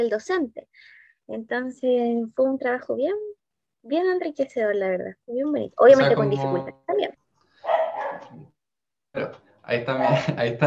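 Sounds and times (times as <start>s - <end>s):
speech: 0.0s - 8.4s, 9.2s - 10.6s
dog barking: 7.6s - 8.4s
laughter: 9.9s - 10.6s.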